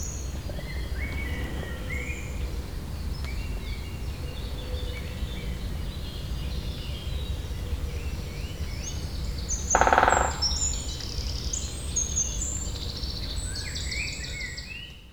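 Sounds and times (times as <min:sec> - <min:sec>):
chorus of songbirds twittering and whistling in Saint-Jean, France: 0:00.0 - 0:15.1
great spotted woodpecker territorial drumming on a dead tree stump in Saint-Jean, France: 0:09.6 - 0:10.9.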